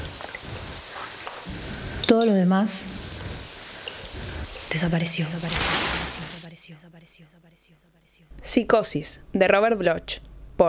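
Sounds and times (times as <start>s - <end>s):
shower water drops falling: 0.0s - 6.5s
speech: 2.1s - 3.0s, 4.7s - 10.6s.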